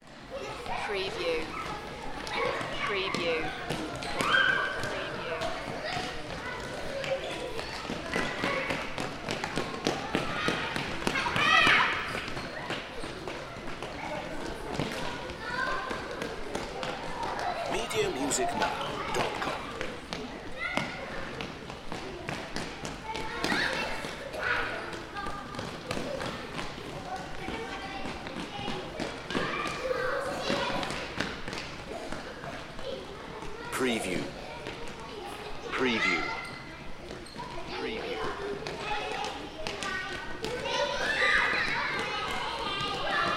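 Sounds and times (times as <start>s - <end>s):
crowd of children in an indoor sports hall: 0.0s - 43.3s.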